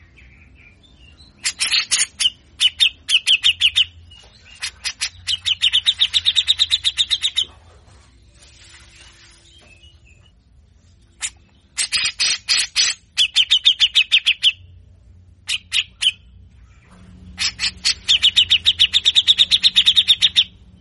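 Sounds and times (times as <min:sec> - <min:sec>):
grey-cheeked bulbul singing harsh rattling scratchy song: 0:00.0 - 0:07.5, 0:11.1 - 0:14.7, 0:15.4 - 0:16.4, 0:17.0 - 0:20.7.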